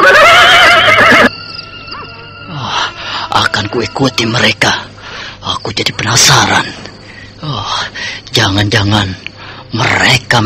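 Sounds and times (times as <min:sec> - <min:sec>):
horse at a stable whinnying: 0:00.0 - 0:01.3
speech: 0:03.7 - 0:04.9, 0:05.6 - 0:10.4.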